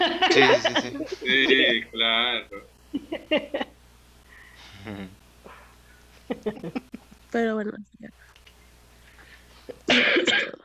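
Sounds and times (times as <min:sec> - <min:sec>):
laughter: 0:00.0 - 0:02.3, 0:02.9 - 0:03.8, 0:06.2 - 0:07.1
speech: 0:00.4 - 0:03.6, 0:06.3 - 0:08.2
small throaty sound: 0:04.5 - 0:06.0
person's harsh barking cough: 0:09.8 - 0:10.6.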